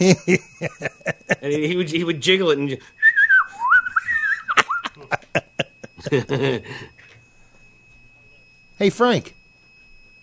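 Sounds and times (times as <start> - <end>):
bursts of laughter: 0.0 - 2.0, 3.6 - 7.1
speech: 0.0 - 3.0, 5.3 - 6.9, 8.8 - 9.4
thin steady high tone: 0.0 - 10.2
wavering high-pitched whistle in a studio: 0.1 - 10.2.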